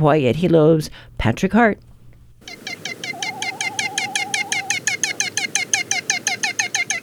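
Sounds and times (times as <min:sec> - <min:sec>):
speech: 0:00.0 - 0:02.6
great frigatebird song: 0:02.4 - 0:07.0.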